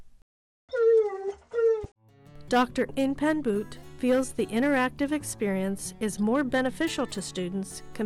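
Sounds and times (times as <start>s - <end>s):
dog whining in an anatomy learning game: 0.7s - 1.9s
speech: 2.5s - 8.0s.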